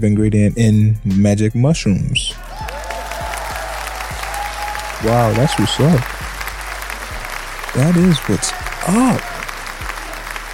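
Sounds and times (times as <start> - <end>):
speech: 0.0 - 2.6, 5.0 - 6.2, 7.8 - 9.4
group applause: 2.4 - 10.5.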